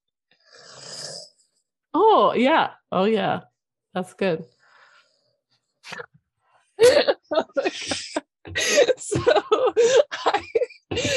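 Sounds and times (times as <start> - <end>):
rough rattling snore from sleep-disrupted breathing: 0.4 - 1.6
speech: 2.2 - 4.6, 5.9 - 6.1, 6.8 - 11.1
laughter: 6.8 - 11.1.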